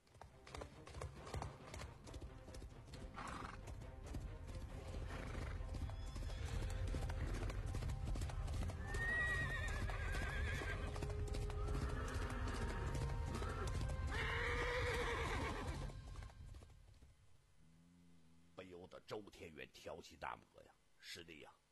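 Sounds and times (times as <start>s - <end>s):
ridden horses' hooves clip-clopping: 0.0s - 17.4s
horses neighing and whinnying: 3.1s - 3.6s, 5.0s - 7.6s, 8.7s - 15.9s
speech: 19.6s - 21.6s.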